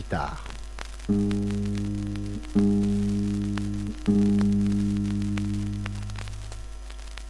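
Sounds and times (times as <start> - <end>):
guitar tuning: 1.1 - 6.8.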